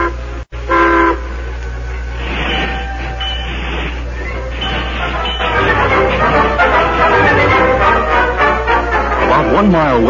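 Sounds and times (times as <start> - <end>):
brief horn-like toot of train: 0.0 - 1.4, 2.2 - 9.2
westbound train rumbling along the track: 0.0 - 10.0.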